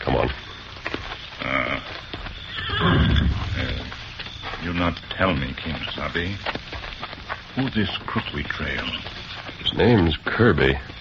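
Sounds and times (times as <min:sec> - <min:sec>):
horse hooves clip-clopping and shuffling: 0:00.0 - 0:10.9
speech: 0:00.2 - 0:00.5, 0:04.9 - 0:06.6, 0:07.6 - 0:10.9
horse whinnying loudly: 0:02.5 - 0:03.9.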